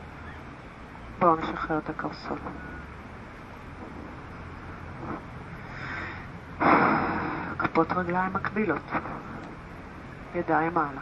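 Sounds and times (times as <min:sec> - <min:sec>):
speech: 0:01.2 - 0:02.8, 0:07.8 - 0:09.1, 0:10.3 - 0:11.0
deep breath in and out: 0:05.5 - 0:07.6.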